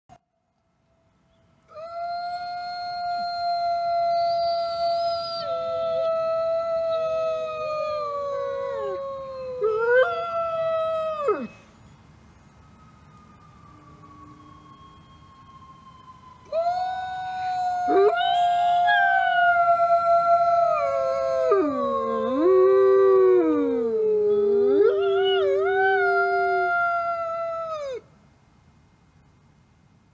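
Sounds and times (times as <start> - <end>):
wolf howling: 1.8 - 11.5, 16.5 - 28.0.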